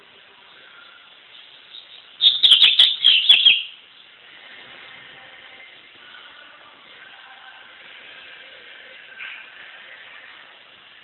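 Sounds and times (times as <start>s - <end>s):
Double-collared seedeater twittering: 1.7s - 3.8s.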